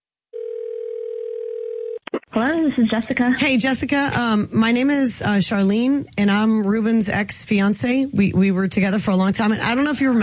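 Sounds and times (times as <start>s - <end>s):
telephone dial tone while dialing a call: 0.4s - 2.0s
speech: 2.4s - 10.2s.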